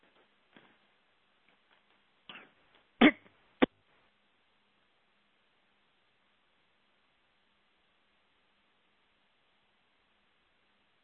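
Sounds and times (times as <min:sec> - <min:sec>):
person coughing: 0:02.3 - 0:03.2
soft throat sounds: 0:02.3 - 0:03.3.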